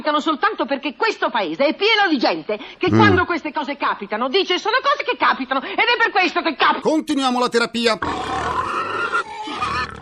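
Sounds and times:
speech: 0.0 - 8.8
pigs grunting and squealing: 2.9 - 3.3, 8.0 - 10.0.

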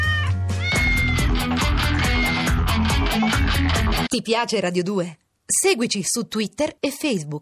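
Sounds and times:
kittens meowing: 0.0 - 2.7
loud rhythmic music track with steady bass beat: 0.8 - 4.1
speech: 4.2 - 7.4.

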